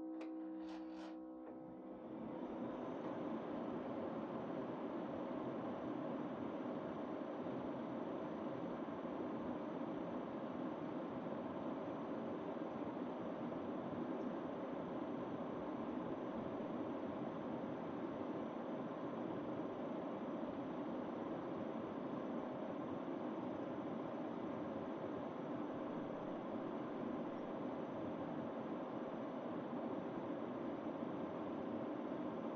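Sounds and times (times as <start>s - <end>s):
distant air conditioner on high setting: 0.2s - 32.5s.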